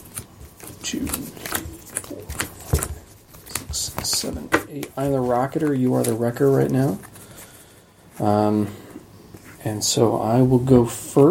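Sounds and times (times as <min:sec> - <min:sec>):
deck of playing cards being shuffled for a card game: 0:00.0 - 0:08.4
speech: 0:00.8 - 0:01.4, 0:04.7 - 0:07.1, 0:08.2 - 0:08.8, 0:09.6 - 0:11.2.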